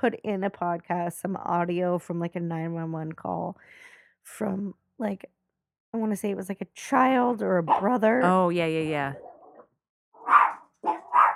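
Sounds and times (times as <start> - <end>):
speech: 0.0 - 9.3
dog barking: 10.2 - 11.3.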